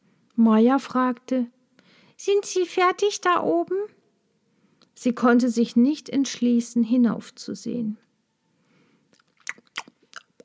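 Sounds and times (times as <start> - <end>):
speech: 0.4 - 1.6, 2.2 - 4.0, 5.0 - 8.0
dragonfly crunching and chewing its prey: 9.1 - 10.4.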